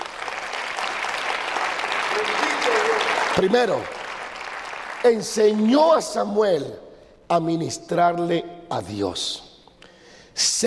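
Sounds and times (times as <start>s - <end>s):
large crowd applauding: 0.0s - 5.8s
speech: 3.4s - 4.0s, 5.0s - 9.5s, 10.4s - 10.6s.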